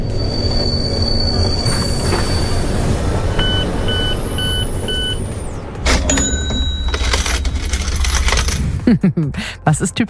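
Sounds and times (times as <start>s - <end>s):
train brakes squealing: 0.0s - 5.3s
electronic beeps: 0.0s - 7.5s
train rumbling: 0.0s - 9.3s.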